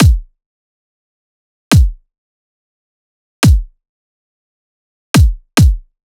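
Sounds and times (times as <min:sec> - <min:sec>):
kick drum loop: 0:00.0 - 0:00.3, 0:01.7 - 0:02.0, 0:03.4 - 0:03.8, 0:05.2 - 0:05.9.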